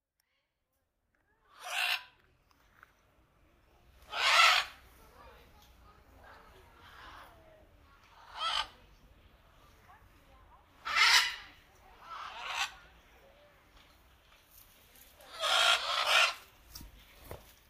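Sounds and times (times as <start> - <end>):
macaw squawking: 1.5 - 2.2, 4.1 - 4.8, 8.1 - 8.8, 10.8 - 12.8, 15.3 - 16.5.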